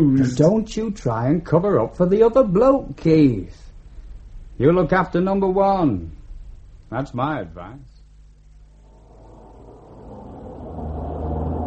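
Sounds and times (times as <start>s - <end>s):
speech: 0.0s - 3.6s, 4.6s - 6.2s, 6.9s - 7.9s
engine rumble from inside a moving car: 9.3s - 11.6s.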